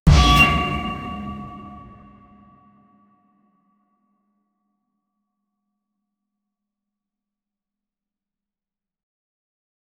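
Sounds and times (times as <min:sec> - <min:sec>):
dynamic hit editing sound: 0:00.1 - 0:02.4.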